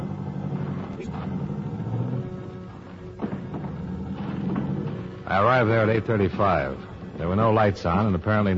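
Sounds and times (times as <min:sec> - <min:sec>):
soft thumps of a taxi rolling over bumps: 0:00.0 - 0:05.3
taxi cab engine and road noise while driving: 0:00.0 - 0:08.5
speech: 0:05.3 - 0:08.5.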